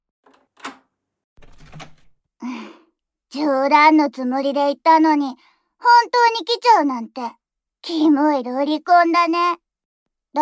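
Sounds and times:
door rattling and creaking open: 0.2 - 2.2
metallic clicks of a lock being turned: 0.3 - 0.8
speech: 3.3 - 9.6.

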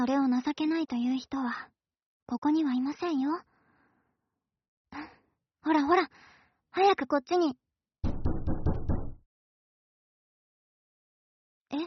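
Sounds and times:
speech: 0.0 - 3.5, 4.9 - 7.6
quick firm knocks on a wooden door: 8.0 - 9.2.

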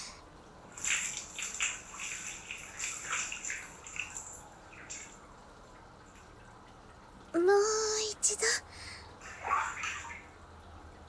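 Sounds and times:
steady hiss: 0.0 - 5.4
water sloshing and splashing in a small basin: 0.0 - 11.0.

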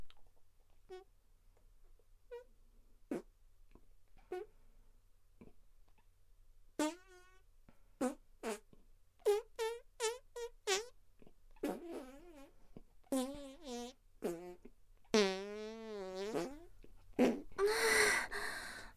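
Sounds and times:
voice imitating farts: 3.1 - 3.3, 6.8 - 7.4, 8.0 - 10.9, 11.6 - 12.5, 13.1 - 17.6
breathy noise: 17.3 - 18.9.

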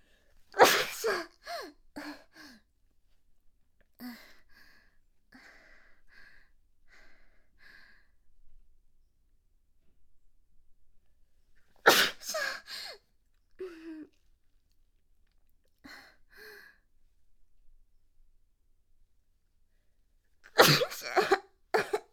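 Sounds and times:
person sneezing: 0.6 - 1.2, 11.9 - 12.5, 20.6 - 22.0.

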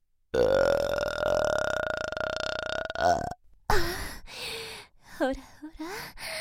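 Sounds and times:
long loud drawn-out burp: 0.3 - 3.4.

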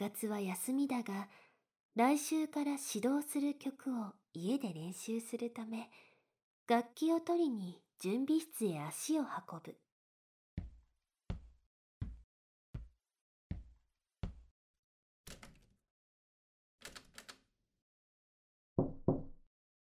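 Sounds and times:
speech: 0.0 - 6.1, 6.7 - 9.8
knocking on a preparation room door: 10.6 - 12.2, 13.5 - 14.5, 18.8 - 19.4.

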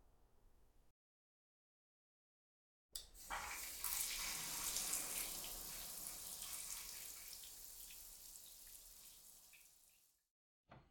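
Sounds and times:
shower water spraying and splashing: 3.0 - 10.2.

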